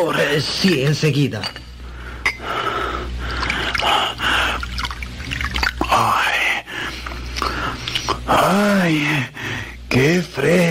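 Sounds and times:
speech: 0:00.0 - 0:01.6, 0:08.3 - 0:10.6
faint low hum: 0:00.0 - 0:10.6
drinking water pouring into a cup: 0:03.3 - 0:06.0.

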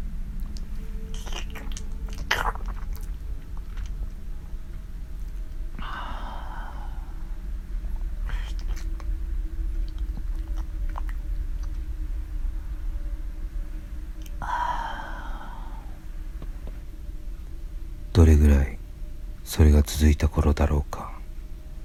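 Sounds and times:
low steady hum: 0:00.0 - 0:21.8
creepy wet slurping and smacking noises: 0:01.1 - 0:04.0, 0:08.4 - 0:09.1
breathy sigh-like exhale: 0:05.8 - 0:07.4, 0:14.3 - 0:16.1.

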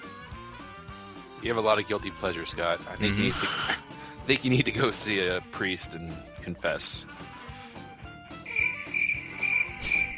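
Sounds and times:
speech: 0:01.4 - 0:07.3
crickets chirping: 0:08.5 - 0:10.1.

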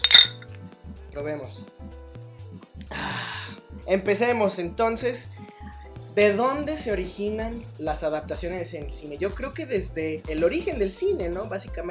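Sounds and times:
glasses clinking in a toast: 0:00.0 - 0:00.4
speech: 0:01.2 - 0:02.0, 0:02.9 - 0:05.5, 0:06.2 - 0:11.8.

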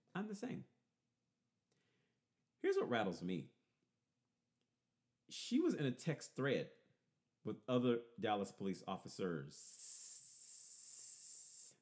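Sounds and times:
speech: 0:00.2 - 0:00.7, 0:02.6 - 0:03.6, 0:05.3 - 0:06.8, 0:07.4 - 0:09.8
drawn-out hissing s from a human voice stressing a plural ending: 0:09.5 - 0:11.7.

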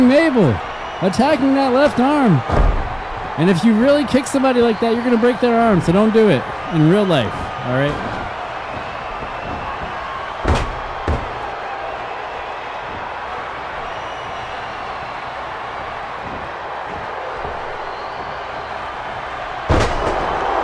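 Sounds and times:
crowd roaring at a tag-team wrestling match: 0:00.0 - 0:20.6
speech: 0:00.1 - 0:02.7, 0:03.4 - 0:08.1
wrestler slammed onto the mat with a side slam: 0:02.5 - 0:03.0, 0:09.3 - 0:11.4, 0:19.7 - 0:20.4.

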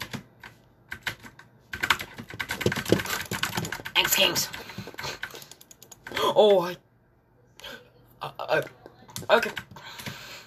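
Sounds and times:
typing on a computer keyboard: 0:00.0 - 0:06.2, 0:08.6 - 0:10.2
speech: 0:04.0 - 0:04.6, 0:06.2 - 0:06.8, 0:08.5 - 0:09.6.

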